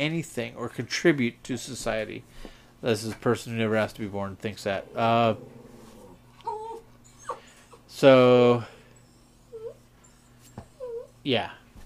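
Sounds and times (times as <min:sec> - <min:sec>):
speech: 0:00.0 - 0:05.6, 0:07.9 - 0:08.8, 0:11.2 - 0:11.6
steady low hum: 0:00.0 - 0:11.8
dog whimpering: 0:04.8 - 0:11.2.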